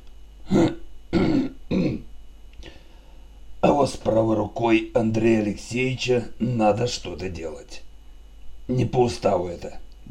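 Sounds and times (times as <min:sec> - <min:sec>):
man clearing his throat after drinking and eating: 0:00.5 - 0:02.1
speech: 0:03.8 - 0:07.9, 0:08.7 - 0:10.1.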